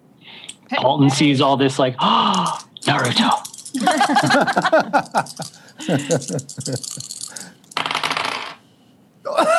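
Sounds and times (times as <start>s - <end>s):
speech: 0.7s - 7.4s
laughter: 3.8s - 7.0s
small twenty-sided die rolling across a hard tabletop: 7.8s - 8.6s.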